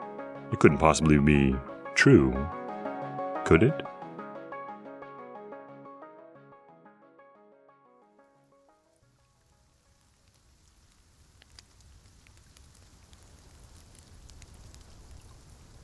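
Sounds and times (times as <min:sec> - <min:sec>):
music: 0:00.0 - 0:10.2
speech: 0:00.5 - 0:02.6, 0:03.4 - 0:03.9
rain pattering at night: 0:08.5 - 0:15.8.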